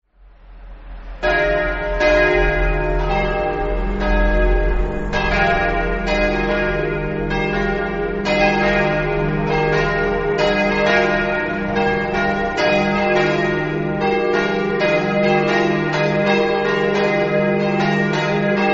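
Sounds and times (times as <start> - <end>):
bells ringing: 1.2 - 18.7.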